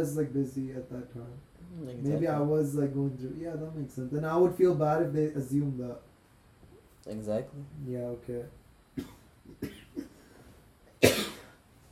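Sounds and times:
speech: 0.0s - 6.1s, 7.0s - 9.7s
person coughing: 9.0s - 10.3s, 11.0s - 11.6s.

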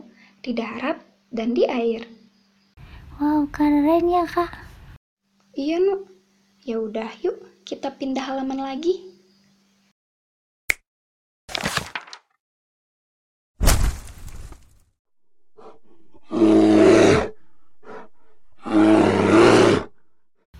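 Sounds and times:
speech: 0.5s - 2.2s, 3.2s - 4.7s, 5.6s - 9.1s
sharp crashing noises: 13.6s - 14.9s
bear roaring: 15.5s - 20.1s.

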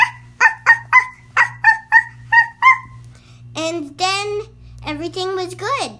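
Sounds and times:
dog barking in sharp yips: 0.0s - 3.0s
low steady hum: 0.0s - 5.9s
speech: 4.9s - 5.9s.

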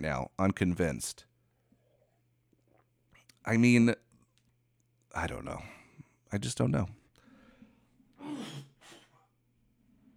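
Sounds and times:
speech: 0.0s - 1.3s, 3.4s - 4.0s, 5.2s - 7.0s
quick raspy coughs: 8.2s - 9.2s.

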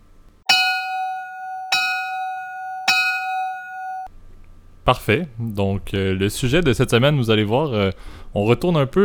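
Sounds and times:
bell struck with a sustained metallic tone: 0.5s - 4.1s
speech: 4.8s - 9.0s.

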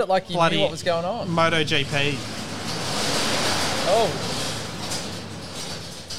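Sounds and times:
speech: 0.0s - 2.4s, 3.9s - 4.4s
thin aluminium door sliding shut along its track: 1.2s - 6.1s.

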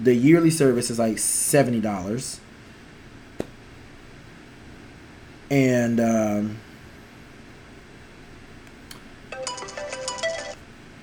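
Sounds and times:
speech: 0.0s - 2.4s, 5.5s - 6.7s
phone ringtone ringing: 9.3s - 10.6s.

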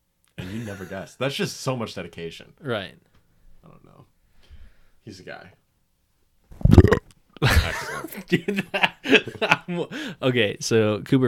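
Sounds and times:
speech: 0.5s - 4.1s, 5.0s - 5.6s, 6.7s - 11.2s
loud low rumbling burp: 6.6s - 7.1s.

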